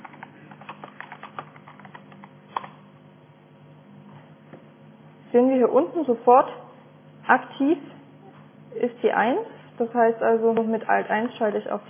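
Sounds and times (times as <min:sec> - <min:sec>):
typing a message on a computer keyboard: 0:00.0 - 0:02.8
speech: 0:05.3 - 0:06.7, 0:07.3 - 0:08.0, 0:08.7 - 0:11.8.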